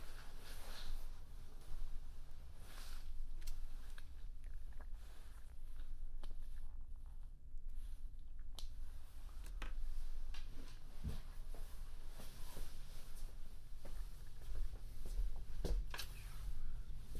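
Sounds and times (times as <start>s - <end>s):
steady low indoor hum in a hotel: 0.0s - 17.1s.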